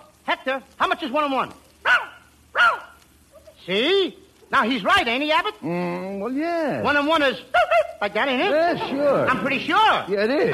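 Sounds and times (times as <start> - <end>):
speech: 0.3 - 1.6, 3.6 - 10.5
dog barking: 1.8 - 3.6, 7.5 - 8.0.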